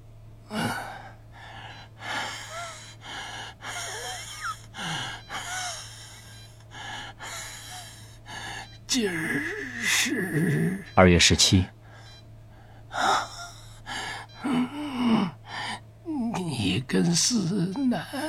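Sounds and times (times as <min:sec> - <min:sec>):
old man's laboured, wheezing breathing: 0:00.5 - 0:09.9, 0:11.8 - 0:15.8
speech: 0:08.9 - 0:11.8, 0:17.2 - 0:18.2.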